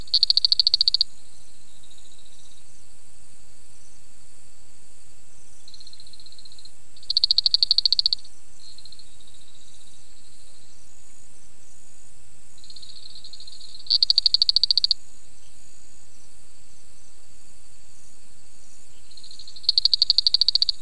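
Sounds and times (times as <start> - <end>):
Spiny reed frog Afrixalus vittiger giving a train of sharp clicks: 0.0 - 1.1, 5.8 - 9.0, 12.7 - 15.0, 19.1 - 20.8.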